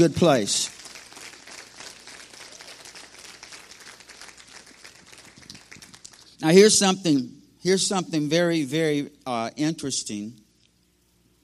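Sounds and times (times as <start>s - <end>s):
speech: 0.0s - 0.7s, 6.4s - 10.4s
audience applauding: 0.3s - 6.3s.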